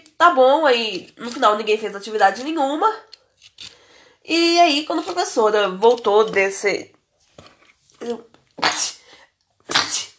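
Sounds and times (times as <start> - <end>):
speech: 0.2 - 3.2, 4.2 - 7.0, 8.0 - 8.9
person sneezing with breathy voiced intake: 9.7 - 10.1.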